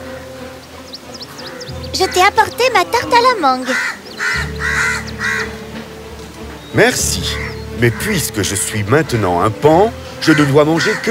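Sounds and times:
crow cawing harshly: 0:01.1 - 0:05.8, 0:07.2 - 0:08.2, 0:10.2 - 0:11.1
speech: 0:02.0 - 0:04.0, 0:06.8 - 0:11.1.

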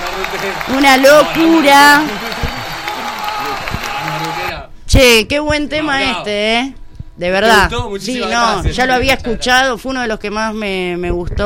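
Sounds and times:
studio audience clapping: 0:00.0 - 0:04.6
speech: 0:00.3 - 0:02.4, 0:04.9 - 0:11.4.

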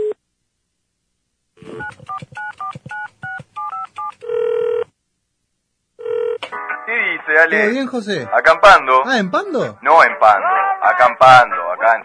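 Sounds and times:
telephone keypad tones as a number is dialed: 0:01.7 - 0:04.8
steady telephone tone: 0:03.7 - 0:04.9, 0:06.0 - 0:06.4
speech: 0:07.3 - 0:12.0.

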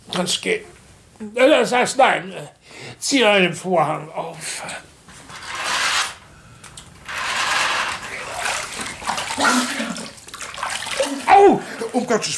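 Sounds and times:
speech: 0:00.2 - 0:04.9, 0:11.4 - 0:12.3
water splashing while someone washes their face: 0:07.5 - 0:12.3
small wet clatters: 0:07.7 - 0:12.1.

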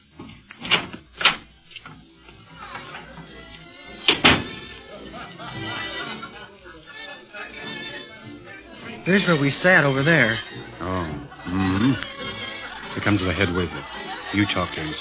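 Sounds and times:
door opening and closing: 0:00.2 - 0:02.0, 0:04.0 - 0:04.7
low murmur of crowd chatter: 0:02.0 - 0:14.9
laughter: 0:02.4 - 0:14.9
speech: 0:09.0 - 0:10.5, 0:13.0 - 0:14.9.

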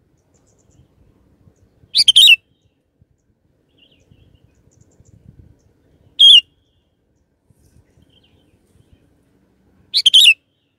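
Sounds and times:
sooty-headed bulbul song: 0:01.5 - 0:02.8, 0:03.7 - 0:06.8, 0:09.9 - 0:10.7.

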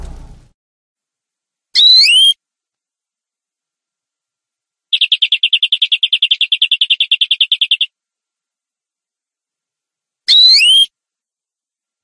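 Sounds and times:
canary singing: 0:01.8 - 0:02.4, 0:04.9 - 0:07.9, 0:10.3 - 0:10.9.

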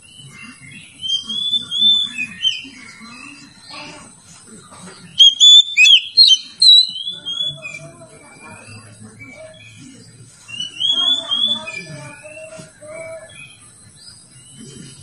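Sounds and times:
Oriental magpie-robin song: 0:00.0 - 0:15.0.

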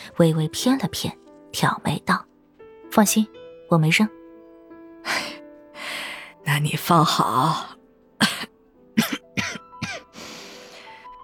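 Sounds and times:
speech: 0:00.2 - 0:02.3, 0:02.9 - 0:04.2, 0:06.6 - 0:07.7
person clearing throat: 0:08.2 - 0:10.1
person coughing lightly: 0:08.2 - 0:10.1.

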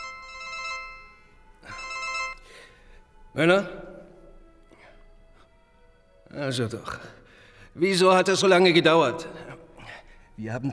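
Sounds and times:
telephone ringing with a steady electronic ringtone: 0:00.0 - 0:02.5
speech: 0:03.4 - 0:03.8, 0:06.4 - 0:07.2, 0:07.8 - 0:09.5, 0:10.4 - 0:10.7.

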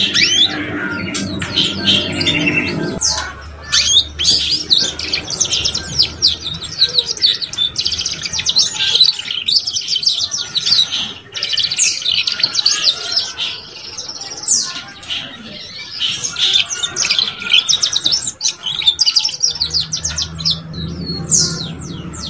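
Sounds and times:
Belgian canary singing with trills, buzzy chirps and whistled notes: 0:00.0 - 0:22.2.

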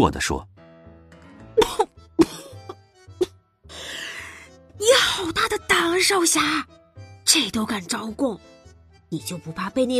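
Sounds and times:
speech: 0:00.0 - 0:00.5, 0:05.5 - 0:06.7, 0:07.3 - 0:08.5, 0:09.1 - 0:09.9
person coughing after choking: 0:01.6 - 0:02.7.

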